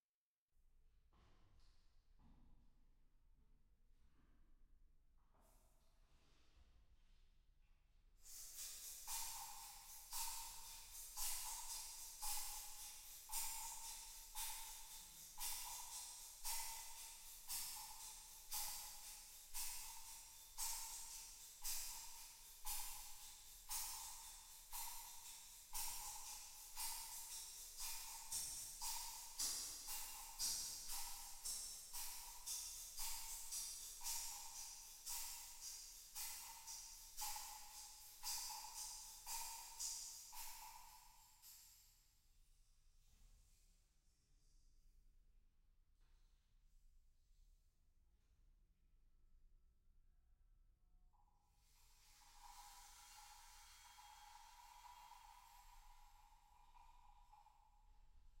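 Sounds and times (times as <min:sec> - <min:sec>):
shakers: 0:08.2 - 0:41.7, 0:51.6 - 0:58.3.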